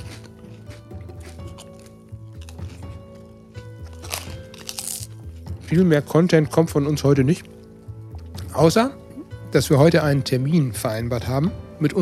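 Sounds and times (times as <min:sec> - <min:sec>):
people chewing crisp pastry: 0:00.0 - 0:05.8
speech: 0:05.7 - 0:07.5, 0:08.6 - 0:11.9.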